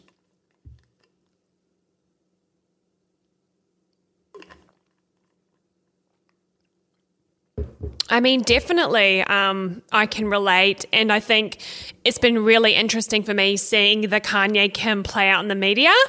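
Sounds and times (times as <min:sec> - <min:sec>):
low steady room hum: 0:00.0 - 0:16.0
sipping and swallowing water: 0:04.3 - 0:07.1
soft knock: 0:07.6 - 0:08.0
speech: 0:08.1 - 0:16.0.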